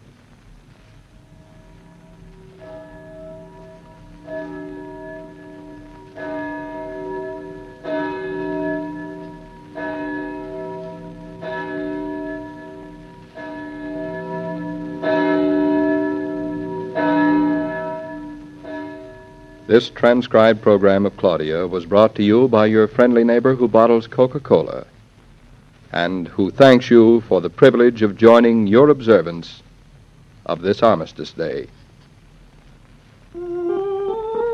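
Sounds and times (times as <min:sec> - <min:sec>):
church bell tolling: 0:01.2 - 0:23.9
speech: 0:19.7 - 0:24.9, 0:26.0 - 0:29.6, 0:30.5 - 0:31.8.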